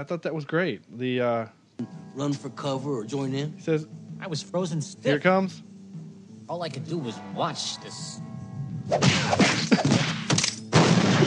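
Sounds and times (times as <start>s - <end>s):
speech: 0.0s - 5.7s, 6.5s - 8.3s, 8.9s - 10.1s
punches landing with heavy thwacks and thuds: 9.0s - 11.2s.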